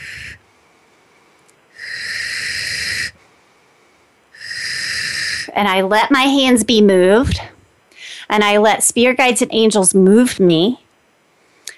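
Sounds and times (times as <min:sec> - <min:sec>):
forceful hissing exhalations breathed out to clear energy: 0:00.0 - 0:05.5
person breathing in: 0:00.0 - 0:05.5, 0:07.9 - 0:08.3
speech: 0:05.6 - 0:07.5, 0:08.3 - 0:10.8.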